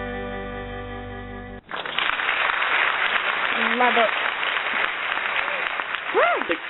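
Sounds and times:
crowd clapping after a song: 0:01.6 - 0:06.6
shrill whoops and cheers from a crowd: 0:05.4 - 0:06.6.

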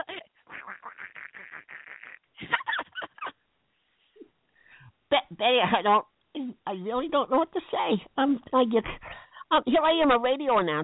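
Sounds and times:
person imitating duck quacking: 0:00.5 - 0:02.2
speech: 0:05.3 - 0:10.8.

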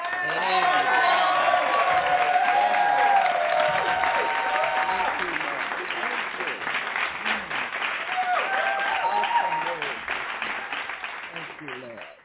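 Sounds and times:
voices shouting and cheering: 0:00.0 - 0:05.4, 0:08.1 - 0:10.0
audience hand clap applause: 0:00.0 - 0:12.2.

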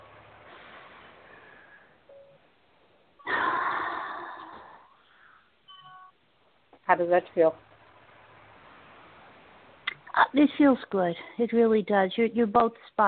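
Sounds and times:
faint noise: 0:00.0 - 0:13.0
deep breath taken during a guided release exercise: 0:00.5 - 0:02.0, 0:03.2 - 0:05.6
speech: 0:06.9 - 0:07.7, 0:10.4 - 0:13.0.

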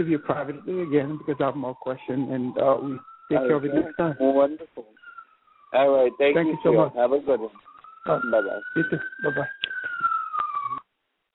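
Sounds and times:
speech: 0:00.0 - 0:05.0, 0:05.7 - 0:09.7
ambulance siren wailing: 0:00.0 - 0:10.8
background noise: 0:00.0 - 0:11.3.

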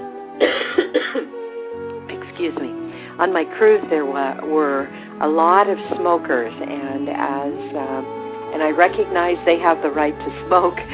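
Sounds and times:
person coughing: 0:00.4 - 0:01.4
speech: 0:02.4 - 0:07.8, 0:08.6 - 0:10.9.

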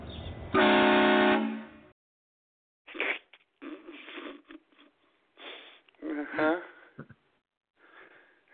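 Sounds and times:
car horn honk: 0:00.6 - 0:01.9.

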